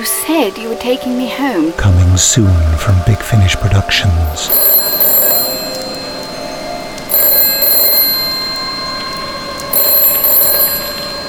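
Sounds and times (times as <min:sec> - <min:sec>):
speech: 0:00.3 - 0:04.7
telephone ringing: 0:04.4 - 0:11.2.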